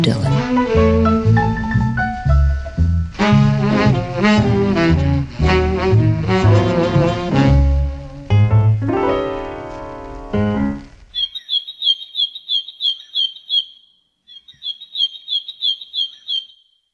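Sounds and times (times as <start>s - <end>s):
speech: 0.0s - 0.9s
burst of music: 0.3s - 10.9s
black-and-white warbler singing thin high squeaky notes: 11.2s - 16.7s.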